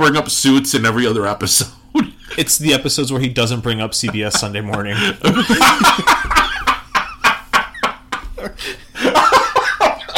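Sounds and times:
speech: 0:00.0 - 0:06.5
person laughing: 0:04.0 - 0:10.1
person coughing in rapid bursts: 0:09.8 - 0:10.1.

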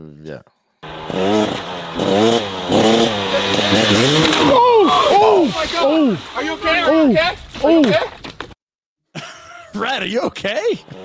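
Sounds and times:
speech: 0:00.0 - 0:02.8, 0:05.5 - 0:08.2, 0:09.8 - 0:11.0
motorbike engine revving: 0:00.8 - 0:05.6, 0:10.8 - 0:11.0.

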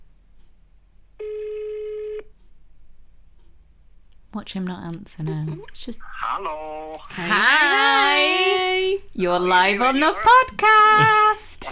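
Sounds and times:
ringback tone of an outgoing phone call to Spain: 0:01.2 - 0:02.2
speech: 0:04.4 - 0:11.7.

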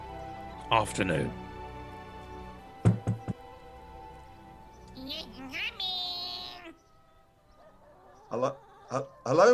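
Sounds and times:
speech: 0:00.7 - 0:01.4, 0:05.1 - 0:05.8, 0:08.3 - 0:09.5
knocking on the front door of a house: 0:02.8 - 0:03.5.

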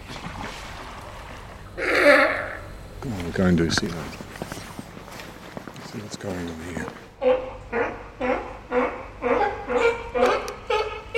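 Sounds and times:
speech: 0:03.0 - 0:04.3, 0:06.1 - 0:07.1
animal sharp barking alarm calls: 0:07.2 - 0:11.1.

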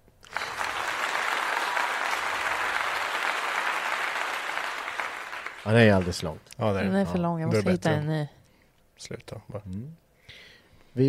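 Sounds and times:
crowd applause sound effect: 0:00.2 - 0:06.4
speech: 0:05.6 - 0:08.4, 0:09.0 - 0:11.0.

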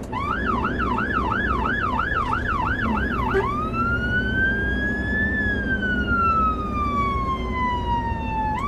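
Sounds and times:
emergency vehicle siren yelping and wailing: 0:00.0 - 0:08.6
steady traffic rumble: 0:00.0 - 0:08.6.

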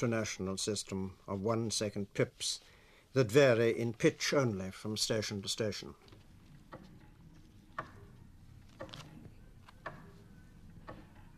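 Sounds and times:
speech: 0:00.0 - 0:06.1
low steady hiss: 0:00.0 - 0:11.3
master clock ticking in a radio service clock room: 0:06.5 - 0:11.3.

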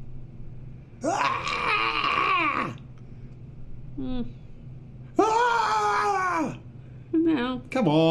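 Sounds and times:
voice imitating screaming with long strained wailing cries: 0:01.0 - 0:02.8, 0:05.2 - 0:06.6
speech: 0:04.0 - 0:04.4, 0:07.5 - 0:08.1.

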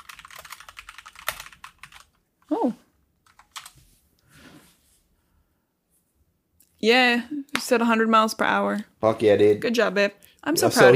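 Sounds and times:
typing on a computer keyboard: 0:00.0 - 0:02.2, 0:03.2 - 0:03.8
speech: 0:06.8 - 0:10.9.

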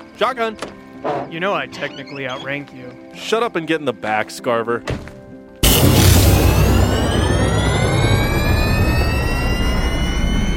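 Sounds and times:
speech: 0:00.2 - 0:05.0
aircraft engine starting up for takeoff: 0:05.6 - 0:10.5
rising aircraft turbine whine: 0:05.6 - 0:10.5.

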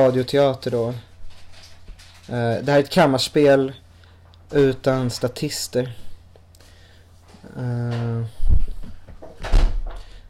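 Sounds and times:
speech: 0:00.0 - 0:01.1, 0:02.3 - 0:03.8, 0:04.5 - 0:06.0, 0:07.4 - 0:08.4
door shutting with a solid thud: 0:09.2 - 0:10.1.

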